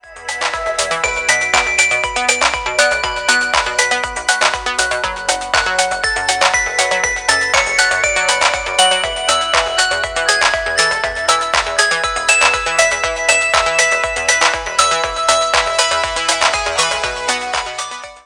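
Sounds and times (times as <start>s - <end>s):
bell ringtone: 0.0s - 18.2s.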